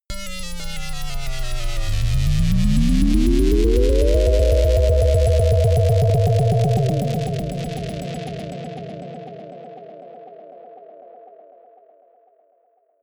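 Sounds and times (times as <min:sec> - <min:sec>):
atonal rhythm drop riser: 0:00.1 - 0:09.9.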